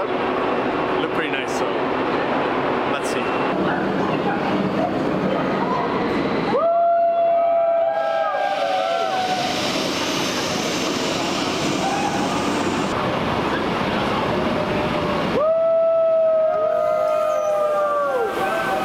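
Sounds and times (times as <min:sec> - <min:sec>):
train rumbling: 0:00.0 - 0:18.8.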